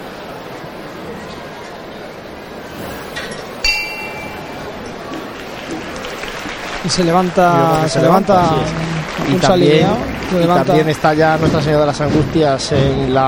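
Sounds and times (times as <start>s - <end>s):
murmur of a large outdoor crowd: 0.0s - 13.2s
procession float bell strike: 3.6s - 5.3s
speech: 6.8s - 13.2s.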